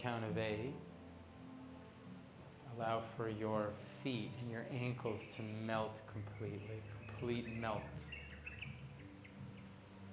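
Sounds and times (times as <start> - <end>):
speech: 0.0 - 0.9, 2.7 - 8.2
birds chirping: 2.5 - 10.1.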